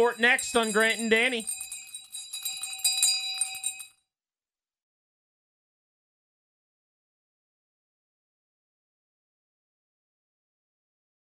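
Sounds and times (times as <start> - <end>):
speech: 0.0 - 1.6
bright metallic bell ringing rapidly: 0.0 - 3.9.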